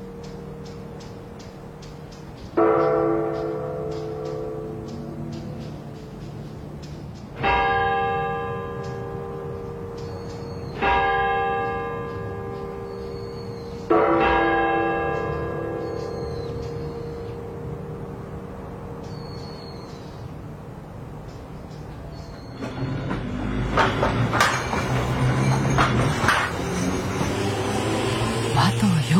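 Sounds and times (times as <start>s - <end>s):
large hanging Buddhist temple bell struck in Nagasaki: 0.0s - 6.3s, 7.4s - 20.3s
faint outdoor noise in Nagasaki: 0.0s - 29.1s.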